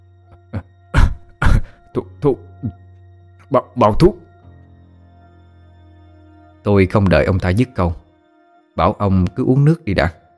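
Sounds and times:
man coughing violently after drawing on a cigarette: 0:00.4 - 0:02.1
speech: 0:02.0 - 0:02.8, 0:03.5 - 0:04.2, 0:06.6 - 0:08.0, 0:08.8 - 0:10.2.

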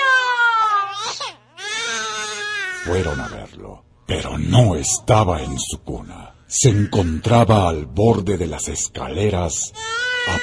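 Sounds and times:
baby crying in its crib: 0:00.0 - 0:03.5, 0:09.8 - 0:10.4
speech: 0:02.8 - 0:10.4.

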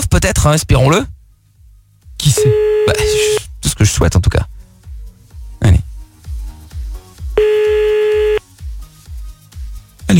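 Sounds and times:
speech: 0:00.1 - 0:01.2, 0:02.2 - 0:04.5
telephone line tone as a call is placed: 0:02.3 - 0:03.4, 0:07.4 - 0:08.4.

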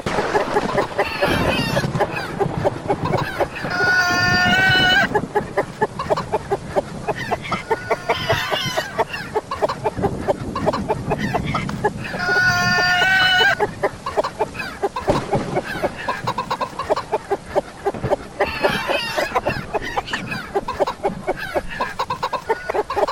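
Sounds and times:
hen clucking and squawking: 0:00.0 - 0:23.1.

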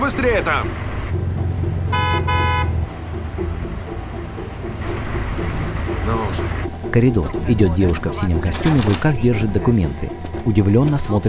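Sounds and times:
car engine low rumble and idle: 0:00.0 - 0:09.0
speech: 0:00.1 - 0:01.3, 0:06.1 - 0:11.2
car horn honked impatiently by a driver: 0:01.8 - 0:02.9.

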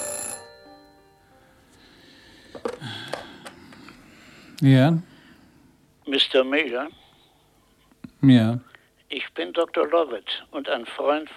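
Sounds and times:
telephone ringing: 0:00.0 - 0:01.5
speech: 0:04.6 - 0:05.1, 0:06.3 - 0:07.0, 0:08.2 - 0:11.3.

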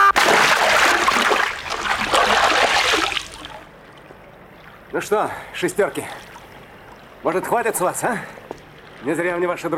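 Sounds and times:
loud splash of a person thrown over a railing into a river: 0:00.2 - 0:03.6
sustained rushing churn of river water: 0:00.2 - 0:07.8
speech: 0:05.0 - 0:06.2, 0:07.2 - 0:08.4, 0:09.0 - 0:09.7.

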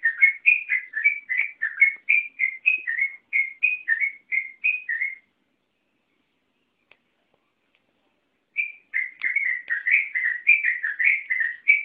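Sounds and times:
Oriental magpie-robin singing clear whistled notes: 0:00.0 - 0:06.9, 0:08.5 - 0:11.8.

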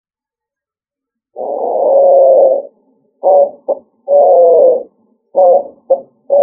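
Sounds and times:
pigeon cooing: 0:01.4 - 0:06.4.

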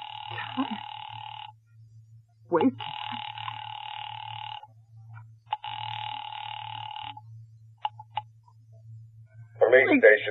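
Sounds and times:
telephone ringback tone on a phone line: 0:00.0 - 0:01.6, 0:02.6 - 0:04.7, 0:05.5 - 0:07.2
low hum: 0:00.0 - 0:10.2
speech: 0:00.6 - 0:00.9, 0:02.5 - 0:03.0, 0:10.0 - 0:10.2.

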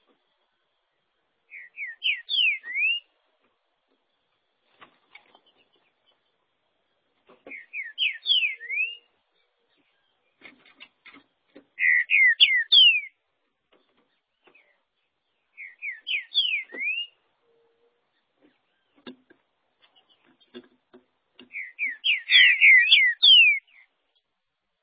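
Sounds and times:
green-winged saltator whistled song: 0:01.5 - 0:03.1, 0:07.5 - 0:09.1, 0:11.8 - 0:13.2, 0:15.6 - 0:17.2, 0:21.5 - 0:23.8.

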